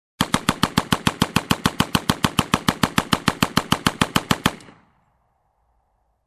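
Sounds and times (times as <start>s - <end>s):
slow and straight machine gun shots: 0.2s - 5.0s.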